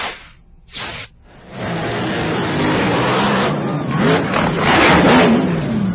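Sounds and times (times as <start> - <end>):
hydroplane racing boat engine roaring during a practice run in San Diego: 1.4 - 5.9.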